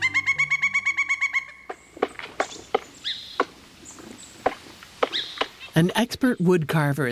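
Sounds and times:
female pileated woodpecker hammering bill into a cedar trunk: 1.0 - 5.8
speech: 5.8 - 7.0.

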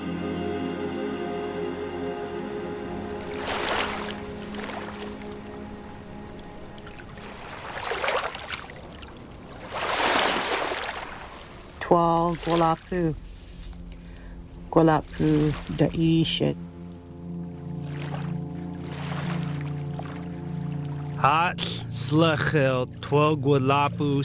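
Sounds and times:
steady low drone: 0.0 - 9.7, 11.4 - 24.2
water sloshing and splashing: 2.8 - 21.2
speech: 11.9 - 13.3, 14.8 - 16.6, 21.2 - 24.2.

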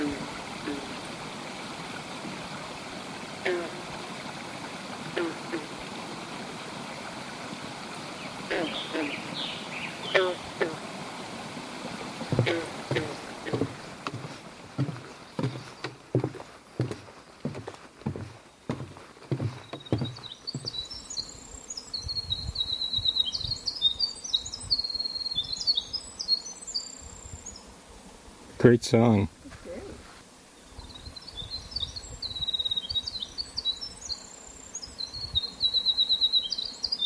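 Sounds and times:
steady water murmur on a calm beaver pond: 0.0 - 21.4
soft knocks and splashes from a canoe on a beaver pond: 11.7 - 20.8
faint bird chirps: 19.6 - 27.6, 30.6 - 37.0
speech: 28.7 - 29.4.

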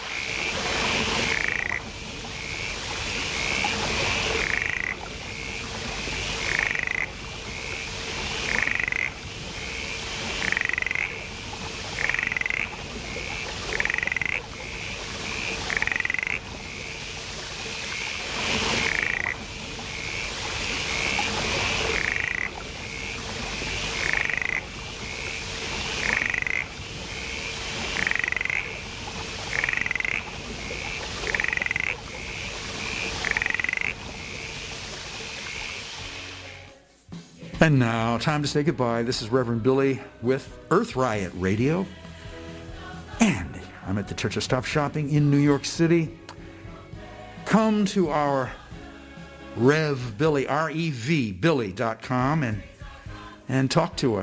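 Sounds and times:
mountain mist frog calling: 0.0 - 36.6
rainforest insects: 0.0 - 36.7
rainforest ambient hiss: 0.0 - 54.2
speech: 37.6 - 42.0, 44.0 - 46.2, 47.5 - 48.6, 49.6 - 52.7, 53.5 - 54.2.

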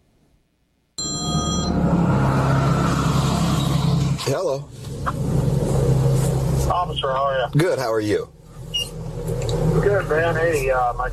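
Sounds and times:
electronic mobile phone ring: 1.0 - 1.8
running vehicle engine rumble: 1.0 - 11.1
speech: 4.3 - 5.2, 6.9 - 8.4, 9.8 - 11.1.

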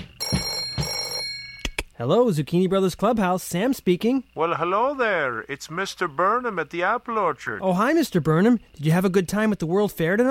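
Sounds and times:
telephone ringing: 0.0 - 1.8
speech: 2.0 - 10.2.

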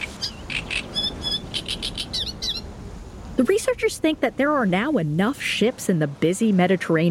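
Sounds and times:
small land birds chirping: 0.0 - 2.7
soft hiss: 0.0 - 6.1
speech: 3.4 - 7.0.

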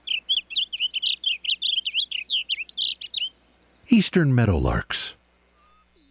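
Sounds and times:
blue grosbeak singing a rapid continuous warble: 0.0 - 4.0, 5.4 - 6.0
faint hum: 0.0 - 6.0
speech: 3.9 - 5.2.

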